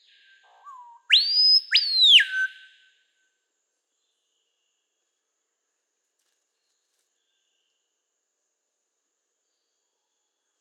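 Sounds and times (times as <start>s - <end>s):
screaming piha giving its loud whistling call: 0.0s - 3.0s.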